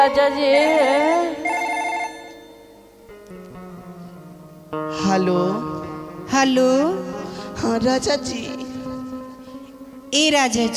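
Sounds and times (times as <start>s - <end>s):
speech: 0.0s - 1.6s, 4.7s - 8.6s, 10.1s - 10.7s
telephone electronic ringtone during a phone call: 1.4s - 2.9s.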